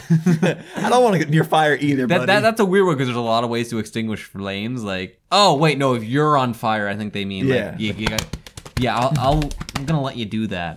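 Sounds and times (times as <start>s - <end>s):
speech: 0.1s - 10.7s
hands patting against one's own body: 7.8s - 10.1s.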